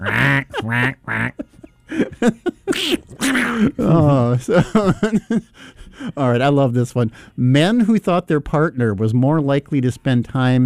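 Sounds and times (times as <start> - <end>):
speech: 0.0 - 1.4, 4.4 - 10.6
several people making exaggerated duck quacking noises with their voices: 0.0 - 1.6, 2.7 - 4.2
laughter: 0.0 - 6.2.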